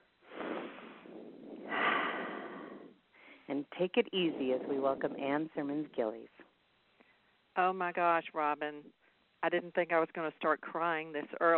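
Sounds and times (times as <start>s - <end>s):
big deep breath taken slowly: 0.2s - 3.5s
speech: 3.5s - 6.5s, 7.6s - 11.5s.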